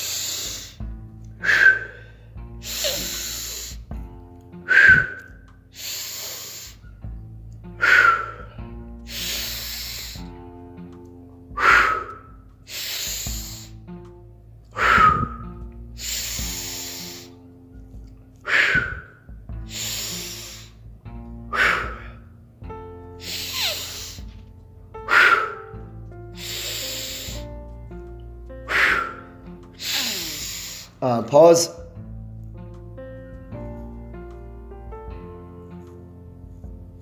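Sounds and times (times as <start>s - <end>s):
deep breathing during a guided breathing exercise: 0.0s - 4.1s, 4.7s - 10.6s, 11.4s - 14.0s, 14.7s - 27.8s, 28.6s - 31.0s
speech: 31.0s - 31.8s.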